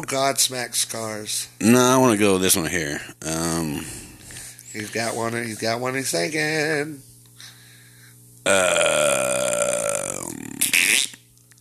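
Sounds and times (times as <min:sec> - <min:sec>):
speech: 0:00.1 - 0:04.0, 0:04.7 - 0:07.1, 0:08.4 - 0:09.2
loud drawn-out buzzy fart: 0:08.5 - 0:11.3.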